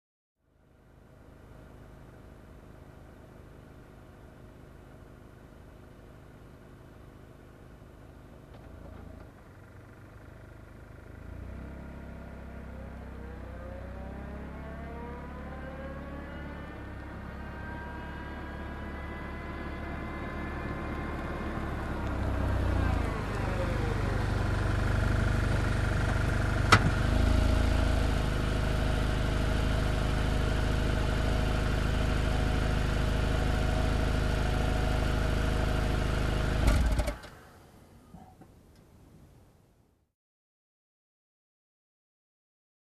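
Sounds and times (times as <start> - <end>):
car reversing and stopping nearby: 5.6 - 38.9.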